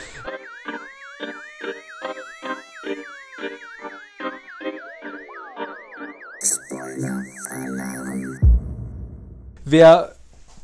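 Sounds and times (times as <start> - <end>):
warbling siren-like spoiler alert alarm tone: 0.2 - 9.6
loud noisy electronic burst: 6.4 - 9.6
rhythmic beat: 6.4 - 9.6
speech: 9.7 - 10.2.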